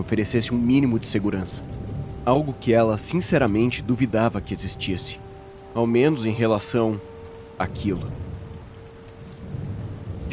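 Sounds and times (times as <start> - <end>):
deep rumbling thunder: 0.0 - 4.8, 7.7 - 10.3
speech: 0.0 - 5.2, 5.8 - 8.3
heavy rain: 0.0 - 10.3.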